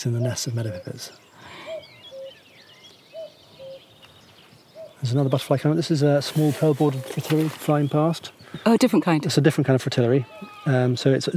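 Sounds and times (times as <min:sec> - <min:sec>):
speech: 0:00.0 - 0:01.6, 0:05.0 - 0:11.3
common cuckoo calling its two-note cu-coo phrase: 0:00.0 - 0:05.2, 0:06.4 - 0:08.2
small birds singing faintly: 0:00.0 - 0:11.3.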